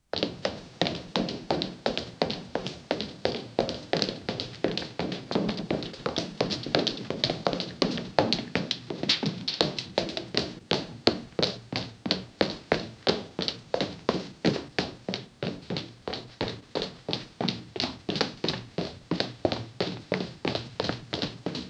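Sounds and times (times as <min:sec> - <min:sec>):
footsteps running on hard floor: 0:00.1 - 0:21.6.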